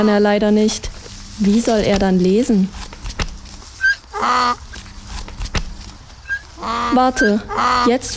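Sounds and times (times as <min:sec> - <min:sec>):
speech: 0:00.0 - 0:02.9, 0:04.2 - 0:04.6, 0:06.6 - 0:08.1
donkey braying hee-haw: 0:03.8 - 0:04.7, 0:06.2 - 0:08.1.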